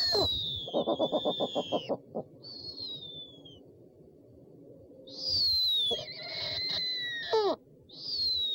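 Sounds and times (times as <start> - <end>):
owl calling with low pulses and high sliding whistles: 0.0 - 3.4, 5.2 - 8.4.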